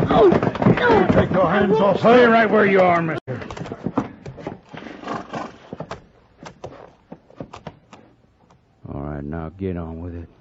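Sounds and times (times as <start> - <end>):
horse hooves clopping: 0.0 - 8.0
speech: 0.1 - 3.2, 9.4 - 10.3.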